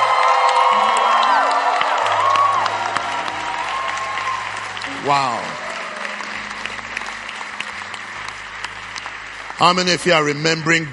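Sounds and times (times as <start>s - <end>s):
whoops and high shouts from the crowd: 0.0s - 6.6s
large crowd clapping and cheering: 0.0s - 10.9s
speech: 5.1s - 5.6s, 9.6s - 10.9s.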